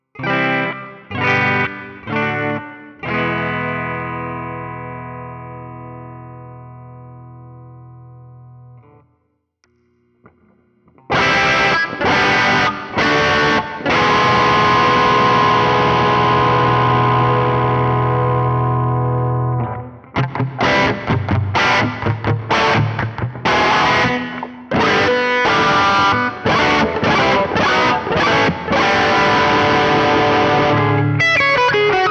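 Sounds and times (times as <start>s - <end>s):
electric guitar through a Crunch Box distortion pedal: 0.0s - 32.0s.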